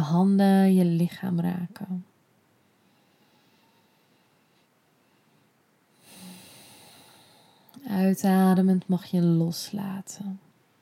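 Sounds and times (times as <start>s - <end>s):
speech: 0.1s - 2.1s, 7.8s - 10.4s
slow soft inhale through the nose: 2.6s - 7.7s.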